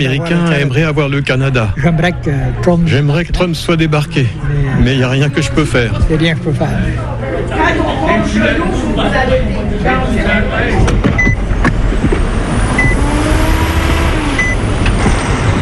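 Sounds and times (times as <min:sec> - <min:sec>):
speech: 0:00.0 - 0:11.1
trucks rumbling at a large highway truck stop: 0:10.0 - 0:15.6
short high beeps: 0:14.4 - 0:14.6.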